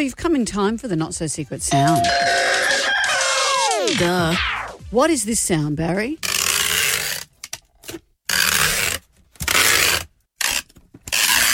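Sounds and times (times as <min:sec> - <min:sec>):
speech: 0:00.0 - 0:02.9, 0:03.9 - 0:06.3
packing tape ripped off legs for waxing: 0:06.2 - 0:11.5.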